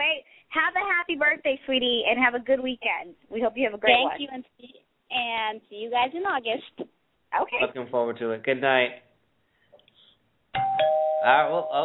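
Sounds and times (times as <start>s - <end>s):
speech: 0.5s - 9.1s, 10.8s - 11.8s
doorbell two-tone ding-dong chime: 10.6s - 11.8s.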